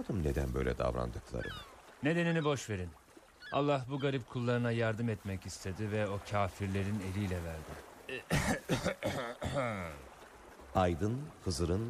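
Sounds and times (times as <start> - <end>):
speech: 0.0 - 10.1, 10.8 - 11.8
hummed throat-clearing: 8.1 - 10.0
loud deliberate throaty cough: 8.2 - 9.8.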